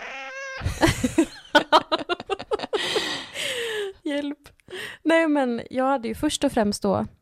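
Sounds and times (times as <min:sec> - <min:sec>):
cat meowing and yowling: 0:00.0 - 0:00.7
speech: 0:00.6 - 0:01.9, 0:05.1 - 0:07.2
laughter: 0:00.6 - 0:03.2.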